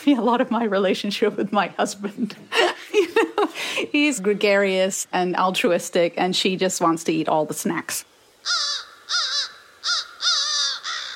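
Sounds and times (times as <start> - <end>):
speech: 0.0 - 2.7, 3.8 - 9.2
laughter: 2.1 - 4.2
crow cawing: 8.4 - 11.1.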